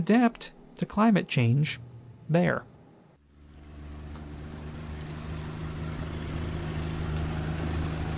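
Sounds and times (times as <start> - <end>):
speech: 0.0 - 2.7
boat engine droning on a river at dawn: 1.6 - 8.1.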